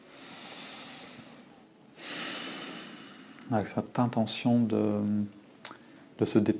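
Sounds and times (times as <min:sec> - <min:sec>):
deep breath through the nose during a guided relaxation exercise: 0:00.0 - 0:03.4
speech: 0:03.5 - 0:05.4, 0:06.2 - 0:06.5.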